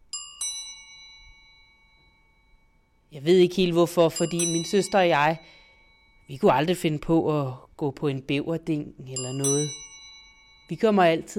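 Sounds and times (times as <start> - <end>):
doorbell-style bell chiming: 0.0 - 3.2, 3.9 - 6.6, 9.1 - 11.3
speech: 3.1 - 5.6, 6.3 - 9.8, 10.7 - 11.3.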